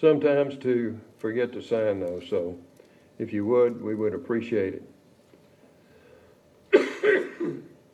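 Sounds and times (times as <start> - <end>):
speech: 0.0 - 4.9
person coughing harshly with a chesty low end: 6.7 - 7.8.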